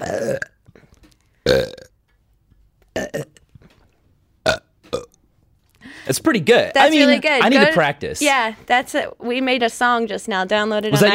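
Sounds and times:
person forcing loud burps: 0.0 - 2.0, 3.0 - 3.4, 4.4 - 5.2
speech: 1.5 - 1.8, 6.1 - 11.1.

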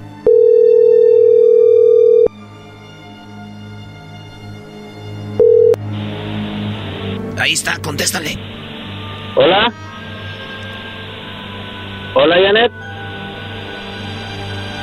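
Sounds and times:
phone ringback tone while redialing: 0.2 - 2.3, 5.4 - 5.8
speech: 7.5 - 8.6, 9.3 - 9.8, 12.2 - 12.8.

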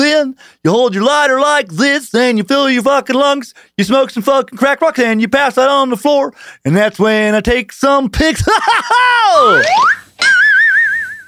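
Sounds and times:
speech: 0.2 - 10.3
laughter: 8.4 - 10.4
slide whistle sound effect played from a button: 9.6 - 11.2.

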